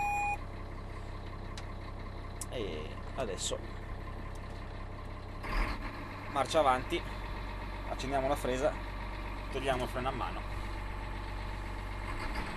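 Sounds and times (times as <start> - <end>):
heavy snow groomer engine idling: 0.0 - 12.5
speech: 2.6 - 3.8, 6.4 - 7.2, 8.0 - 8.9, 9.5 - 10.6.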